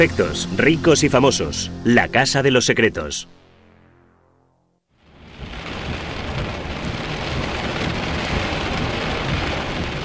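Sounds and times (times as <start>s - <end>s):
speech: 0.0s - 3.4s
pouring rain in a heavy thunderstorm: 5.0s - 10.0s
deep rolling thunder: 5.1s - 10.0s.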